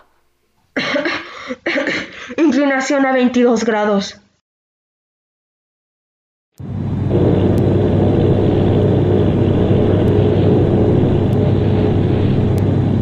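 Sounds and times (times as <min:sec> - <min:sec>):
speech: 0:01.5 - 0:04.2
engines of a formation of eight bomber aircraft droning in flight: 0:06.6 - 0:13.0.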